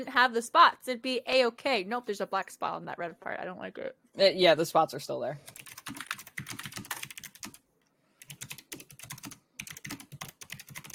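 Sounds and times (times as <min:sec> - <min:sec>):
speech: 0:00.0 - 0:06.0
fast forceful typing on a computer keyboard: 0:05.5 - 0:07.6, 0:08.2 - 0:10.9.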